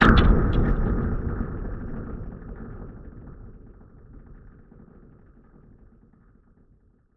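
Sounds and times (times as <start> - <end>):
deep impact with delay effect: 0.0 - 5.1.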